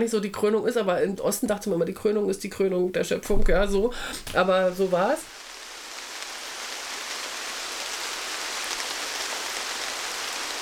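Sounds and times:
speech: 0:00.0 - 0:05.4
heavy downpour of rain: 0:03.3 - 0:10.6.

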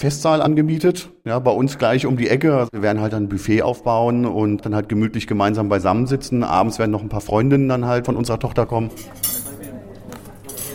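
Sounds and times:
speech: 0:00.0 - 0:09.3
low murmur: 0:08.6 - 0:10.7
cutlery handled at a table set with several courses of silverware: 0:08.9 - 0:10.7.

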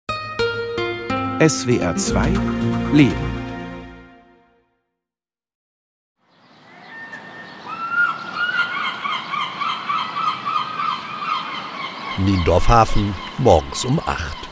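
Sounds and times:
speech: 0:01.4 - 0:03.4, 0:12.2 - 0:14.5
gull crying at a Baltic coast harbour: 0:06.3 - 0:14.5
steady outdoor hum: 0:06.3 - 0:14.5.

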